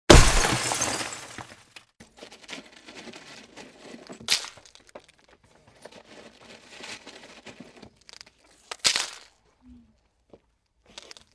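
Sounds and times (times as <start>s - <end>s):
car side window glass breaking: 0.1s - 1.5s
glass shards being cleared from a car: 0.1s - 1.6s.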